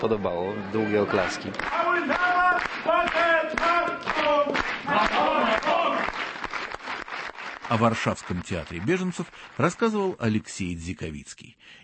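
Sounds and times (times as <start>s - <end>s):
speech: 0.0s - 5.5s, 7.7s - 11.8s
sustained audience applause in a theatre hall: 0.0s - 10.3s.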